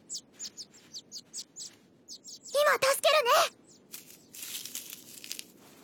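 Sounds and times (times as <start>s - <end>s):
small bird chirping in distress: 0.0s - 5.4s.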